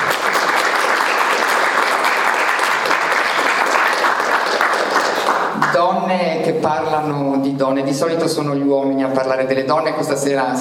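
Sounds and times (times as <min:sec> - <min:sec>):
audience applause for a female guest at an evening talk: 0:00.0 - 0:05.8
speech: 0:05.8 - 0:10.5.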